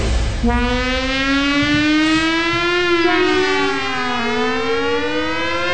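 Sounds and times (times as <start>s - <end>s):
rumbling noise: 0.1s - 3.5s
civil defense siren wailing: 0.4s - 5.7s.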